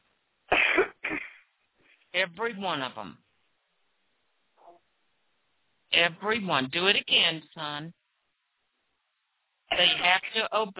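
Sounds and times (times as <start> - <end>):
person coughing harshly: 0.5 - 1.5, 9.7 - 10.1
speech: 2.2 - 3.2, 6.0 - 8.0, 9.7 - 10.7.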